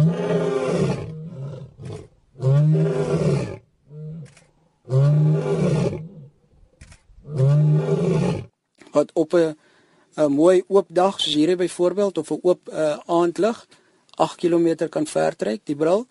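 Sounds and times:
lion roaring in deep powerful bellows: 0:00.0 - 0:06.4, 0:07.2 - 0:08.5
speech: 0:09.0 - 0:16.1.

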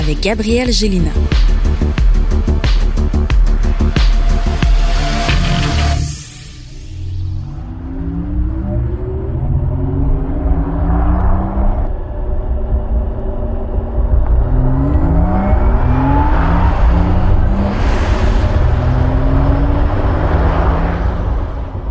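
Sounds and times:
steady road and motor noise: 0:00.0 - 0:21.8
speech: 0:00.1 - 0:01.6
Porsche Taycan GTS layered tonal whines sweeping upward in pitch: 0:01.2 - 0:21.8
new Porsche Taycan GTS electric drive whirring hum: 0:06.1 - 0:21.8.

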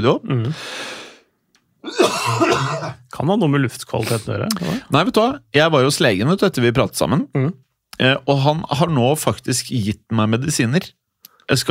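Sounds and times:
speech: 0:00.0 - 0:00.9, 0:01.8 - 0:11.6
person coughing in the studio: 0:01.8 - 0:03.0.

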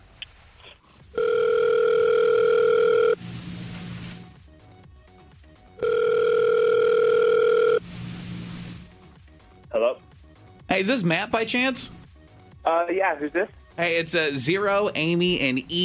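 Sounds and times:
long steady electronic telephone ringback tones: 0:01.2 - 0:03.2, 0:05.8 - 0:07.8
speech: 0:10.8 - 0:12.0, 0:12.7 - 0:15.8.

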